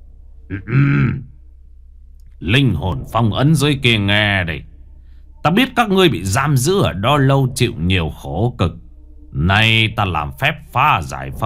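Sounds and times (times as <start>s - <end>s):
speech: 0.5s - 1.3s, 2.4s - 4.7s, 5.4s - 11.4s
throat clearing by a ritual master by a pond: 0.5s - 1.3s.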